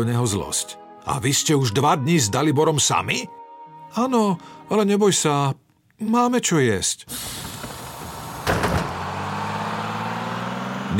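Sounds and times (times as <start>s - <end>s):
speech: 0.0s - 7.5s
bus door closing with a rattling burst: 7.1s - 10.2s
low diesel engine rumble of a bus bound for Serbia: 7.1s - 10.9s.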